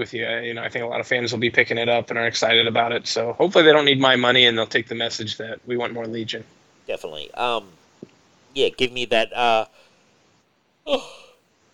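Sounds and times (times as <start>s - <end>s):
speech: 0.0s - 7.8s, 8.5s - 9.8s, 10.9s - 11.2s
breathy yawn: 10.9s - 11.4s.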